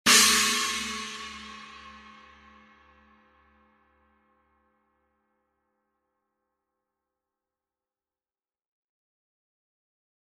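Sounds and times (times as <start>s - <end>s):
16-inch high China cymbal: 0.1s - 3.0s.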